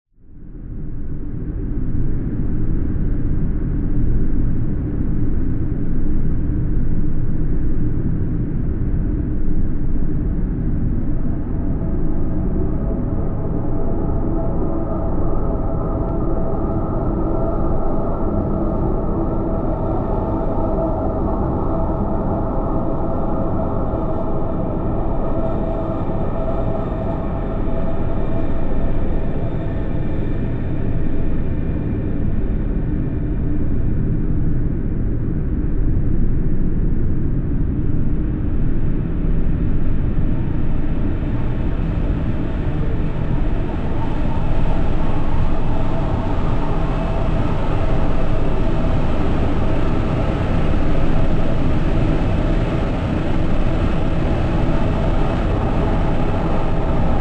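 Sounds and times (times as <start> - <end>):
drone: 0.4 - 57.2.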